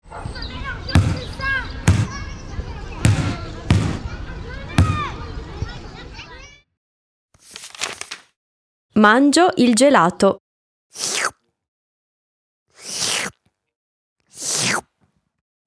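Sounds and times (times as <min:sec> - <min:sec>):
voices chattering: 0:00.0 - 0:06.6, 0:09.0 - 0:10.4
ball bouncing: 0:00.8 - 0:04.1, 0:04.7 - 0:05.2
speech: 0:09.0 - 0:11.1.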